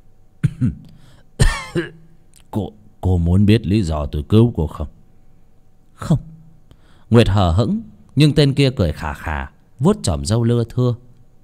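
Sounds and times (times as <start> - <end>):
old man sitting under a tree coughing harshly: 0.4 - 2.1
speech: 0.6 - 0.9, 1.8 - 5.0, 6.0 - 6.3, 7.1 - 11.0.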